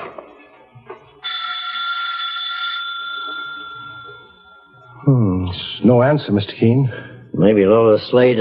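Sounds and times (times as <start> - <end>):
electric doorbell ringing: 1.2 - 4.8
speech: 5.1 - 8.3.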